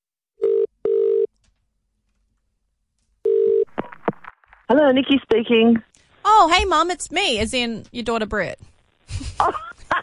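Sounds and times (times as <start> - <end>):
electronic phone ringback tones: 0.4 - 1.3, 3.3 - 3.7
speech: 4.7 - 8.7, 9.4 - 9.7.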